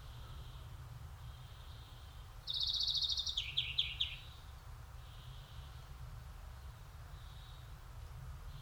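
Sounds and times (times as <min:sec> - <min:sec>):
faint bird calls: 0:00.0 - 0:05.9, 0:06.6 - 0:07.8
low background rumble: 0:00.0 - 0:08.6
European greenfinch Chloris chloris rapid even trill: 0:02.5 - 0:04.4.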